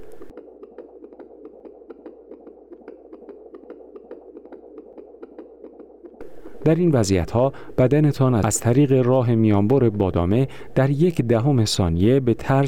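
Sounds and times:
rapid heartbeat: 0.0 - 7.0
low hum: 0.0 - 12.6
speech: 6.6 - 12.6.

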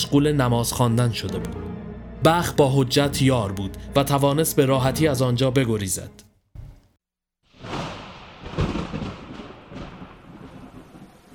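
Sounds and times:
speech: 0.0 - 6.3
deep rumble of thunder: 7.6 - 11.3
heavy rain pouring on the city: 7.6 - 11.3.

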